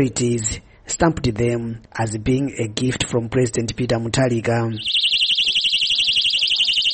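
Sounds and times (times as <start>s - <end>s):
speech: 0.0s - 5.0s
personal safety alarm shrieking: 4.8s - 6.9s.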